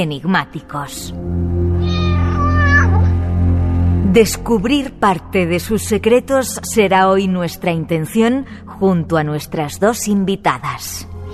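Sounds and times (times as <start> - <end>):
speech: 0.0 - 1.6, 4.2 - 11.3
steady low droning background: 0.0 - 11.3
cat meowing: 1.7 - 3.2.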